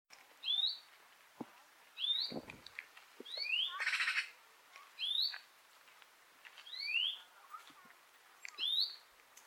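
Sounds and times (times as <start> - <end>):
European greenfinch Chloris chloris giving rising upslurred whistled calls: 2.0 - 2.4, 3.3 - 4.3, 5.0 - 5.4, 6.7 - 7.3, 8.6 - 9.0.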